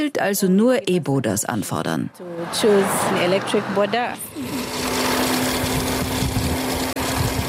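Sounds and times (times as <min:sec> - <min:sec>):
speech: 0:00.0 - 0:05.0
broad road noise: 0:00.2 - 0:07.4
electric motorcycle taxi whirring down a street in Kampala: 0:03.3 - 0:07.4.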